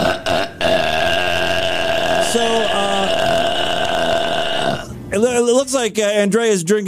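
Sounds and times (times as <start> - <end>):
loud drawn-out belching: 0.0 - 5.0
speech: 5.2 - 6.8.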